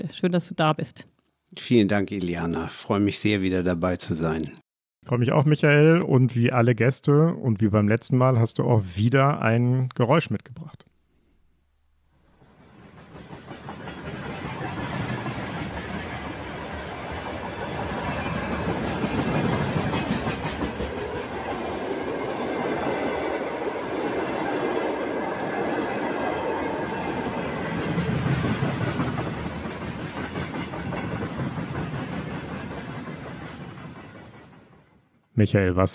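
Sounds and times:
speech: 0.0 - 10.9, 35.4 - 35.9
freight wagon wheels clickety-clacking over the rails: 12.4 - 35.0
freight train wagons carrying tanks, howitzers and rocket launchers rumbling: 12.4 - 35.1.

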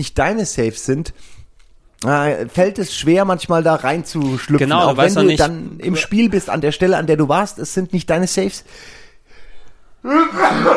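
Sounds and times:
speech: 0.0 - 1.4, 2.0 - 9.0, 10.0 - 10.7
loud sneeze: 10.1 - 10.7.

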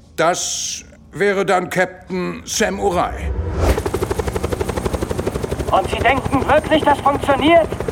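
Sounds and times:
speech: 0.2 - 3.7, 5.7 - 7.8
helicopter rotor chopping: 2.8 - 7.8
broad whooshing roar of helicopter: 3.0 - 3.9.

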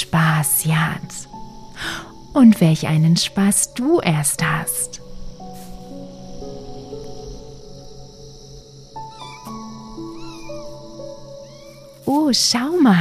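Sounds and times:
speech: 0.0 - 5.0, 12.1 - 12.9
sustained tones: 0.0 - 12.9
kittens mewing while playing: 9.1 - 10.7.

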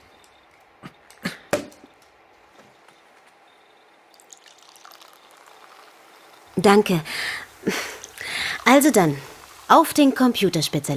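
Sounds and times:
Sekt sparkling wine bottle popping open: 1.1 - 2.0
sparkling wine pouring fizzily into glasses: 4.0 - 10.9
speech: 6.6 - 7.8, 8.7 - 10.9.

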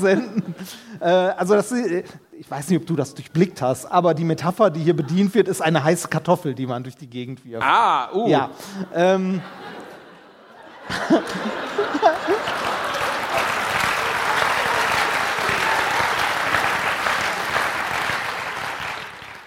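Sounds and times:
audience laughing: 0.0 - 0.9, 8.6 - 18.3
speech: 0.0 - 9.8, 10.9 - 12.8
audience clapping: 10.9 - 19.4.

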